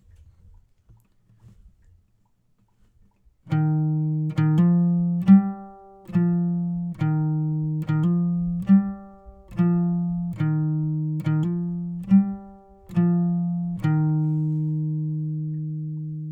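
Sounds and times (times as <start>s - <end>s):
guitar outro: 3.5s - 16.3s.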